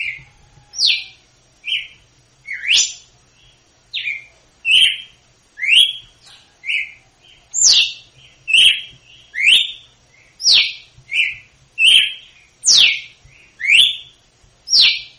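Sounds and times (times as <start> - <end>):
female red-cowled cardinal whistled song in Northeast Brazil style: 0.8 - 3.1, 3.9 - 7.0, 7.6 - 15.1.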